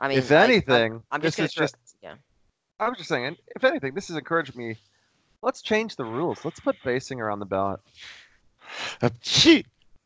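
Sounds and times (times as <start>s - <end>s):
speech: 0.0s - 9.7s
laughter: 0.2s - 1.7s, 2.8s - 4.7s, 5.5s - 7.8s, 8.8s - 9.6s
person sneezing: 8.8s - 9.5s.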